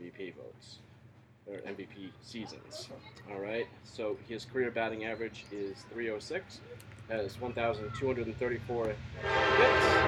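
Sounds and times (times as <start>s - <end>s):
speech: 0.2s - 0.9s, 1.5s - 10.0s
passing train rumbling: 7.0s - 10.0s
train horn: 9.2s - 10.0s.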